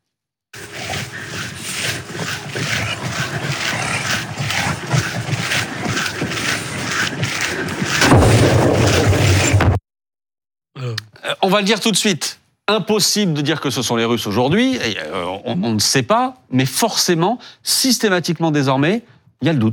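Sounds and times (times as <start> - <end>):
rough roar: 0.6 - 9.8
electrical explosions from sabotage of high-voltage power lines: 8.0 - 9.8
speech: 11.4 - 19.7.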